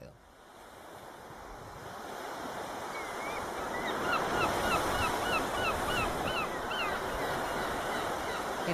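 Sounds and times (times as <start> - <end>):
ocean surf: 0.0 - 8.7
flock of seagulls calling: 2.9 - 8.7.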